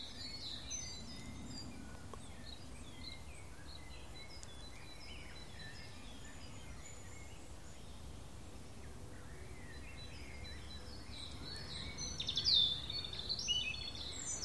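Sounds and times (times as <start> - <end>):
European robin singing: 0.0 - 14.4.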